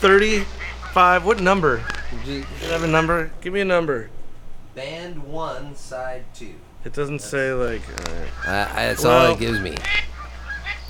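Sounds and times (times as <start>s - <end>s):
speech: 0.0s - 4.2s, 4.8s - 10.1s
steady low hum: 0.0s - 10.8s
Canada geese honking: 0.4s - 3.3s, 8.2s - 10.8s.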